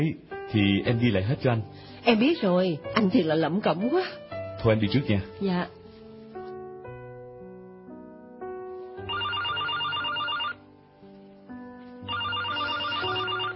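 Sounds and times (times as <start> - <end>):
speech: 0.0 - 5.8
soft melodic music: 0.0 - 13.5
home telephone ringing with trilling bell tones: 9.1 - 10.6, 12.1 - 13.5.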